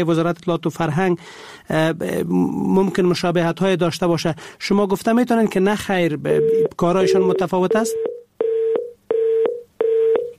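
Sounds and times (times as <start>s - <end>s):
speech: 0.0s - 8.1s
telephone beeps after a call is cut off: 6.4s - 10.3s.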